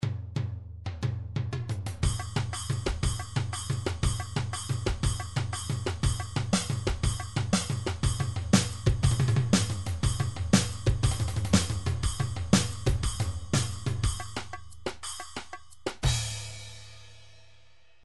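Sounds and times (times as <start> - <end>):
tribal MIDI drums: 0.0 - 16.8.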